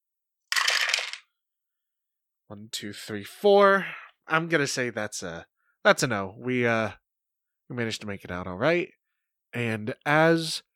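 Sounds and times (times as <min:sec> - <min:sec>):
six dice rolled for a game check rattling across a hard surface: 0:00.5 - 0:01.2
speech: 0:02.5 - 0:07.0, 0:07.7 - 0:10.7.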